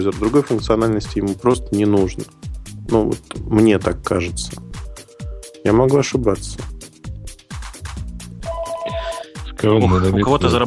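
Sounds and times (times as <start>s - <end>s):
speech: 0.0s - 4.7s, 5.6s - 6.8s, 9.6s - 10.6s
phone ringtone, bright electronic melody with punchy repeating beats: 8.4s - 9.5s.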